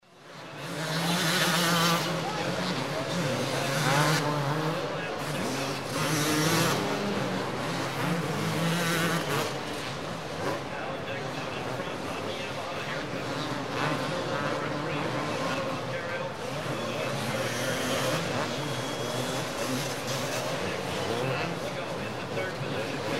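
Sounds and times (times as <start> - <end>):
motocross motorcycles riding on the track: 0.0 - 23.1.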